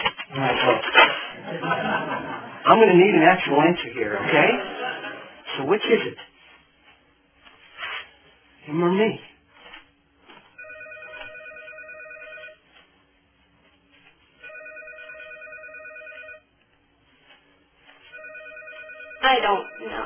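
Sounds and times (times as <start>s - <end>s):
laughter: 1.3s - 2.9s, 4.1s - 5.5s
speech: 2.7s - 4.7s, 5.6s - 6.3s, 8.7s - 9.3s
telephone ringing in electronic bursts: 10.6s - 12.6s, 14.4s - 16.5s, 18.0s - 20.0s.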